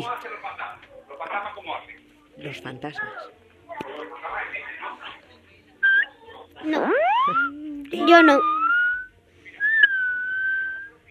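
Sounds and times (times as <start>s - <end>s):
speech: 1.3s - 4.2s, 6.6s - 8.6s
theremin whistling tone: 5.8s - 11.1s.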